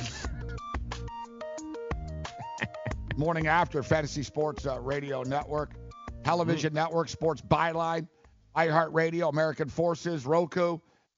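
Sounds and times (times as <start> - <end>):
bright electronic song melody resembling a phone ringtone: 0.4 - 7.8
speech: 3.2 - 11.1.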